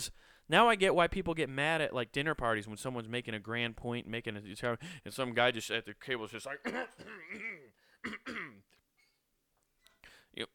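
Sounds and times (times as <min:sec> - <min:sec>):
speech: 0:00.0 - 0:08.7, 0:10.4 - 0:10.5
quiet small mouth sounds: 0:06.5 - 0:08.7
man clearing his throat at a dinner-table conversation: 0:06.6 - 0:08.7.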